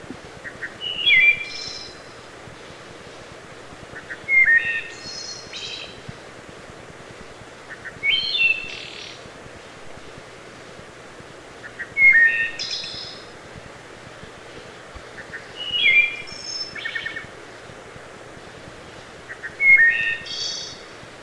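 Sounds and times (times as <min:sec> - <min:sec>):
wood thrush singing flute-like phrases: 0:00.4 - 0:02.2, 0:04.0 - 0:06.0, 0:07.7 - 0:09.2, 0:11.6 - 0:13.3, 0:15.2 - 0:17.3, 0:19.3 - 0:20.9.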